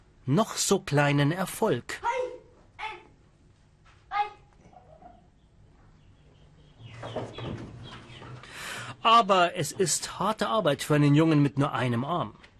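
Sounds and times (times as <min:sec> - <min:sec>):
broad low noise: 0:00.0 - 0:12.5
speech: 0:00.3 - 0:02.1, 0:09.0 - 0:12.4
chickens clucking in an abandoned flat: 0:04.7 - 0:09.1.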